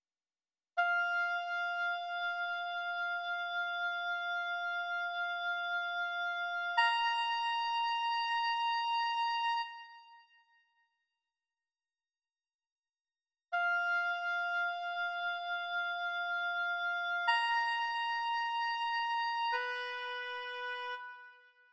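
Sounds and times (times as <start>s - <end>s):
oboe solo: 0.8s - 10.1s, 13.6s - 21.5s.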